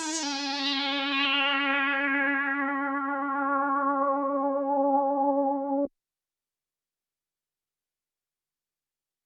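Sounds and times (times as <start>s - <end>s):
lead synth with delay: 0.1s - 5.9s.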